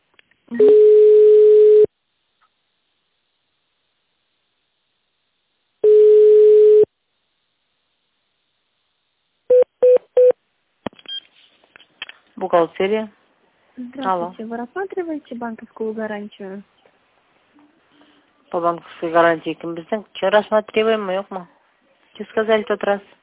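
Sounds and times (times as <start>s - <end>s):
speech: 0.5s - 0.8s, 12.5s - 13.2s, 13.8s - 16.8s, 18.5s - 21.6s, 22.2s - 23.2s
telephone line tones during call transfer: 0.5s - 1.9s, 5.8s - 6.9s.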